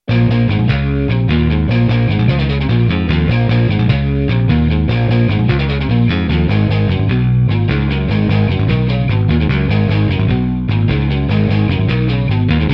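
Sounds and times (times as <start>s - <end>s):
Cobalt open guitar: 0.0s - 12.7s.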